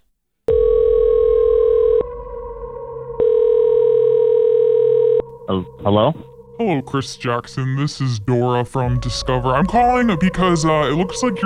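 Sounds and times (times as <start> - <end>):
telephone ringing tone on an outgoing prank phone call: 0.5 - 2.1, 3.2 - 5.3
speech: 5.5 - 11.4.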